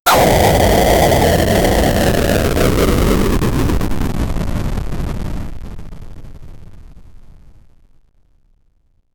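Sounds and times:
retro game fire element sound effect: 0:00.0 - 0:04.3.

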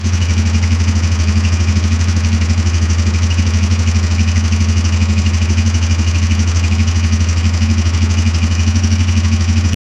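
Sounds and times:
old Fiat 127 style car: 0:00.0 - 0:09.8.

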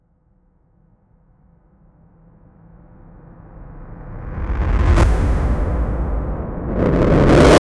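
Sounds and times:
reversed explosion: 0:04.0 - 0:07.6.

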